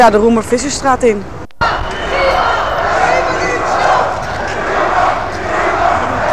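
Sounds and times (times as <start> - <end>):
speech: 0.0 - 1.8
crowd of demonstrators shouting and chanting outdoors: 1.6 - 6.3
footsteps of demonstrators marching into a street: 4.0 - 6.3.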